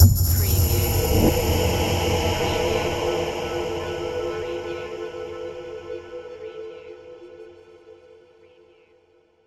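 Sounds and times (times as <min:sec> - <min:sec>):
vocal hit: 0:00.0 - 0:05.0.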